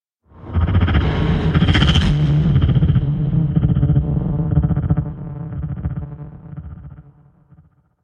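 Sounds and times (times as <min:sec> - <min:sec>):
epic sci-fi whoosh: 0:00.3 - 0:05.5.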